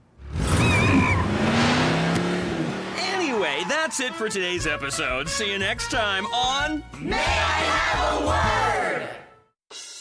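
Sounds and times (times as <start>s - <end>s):
dune buggy engine roaring: 0.2s - 4.1s
speech: 3.9s - 9.2s.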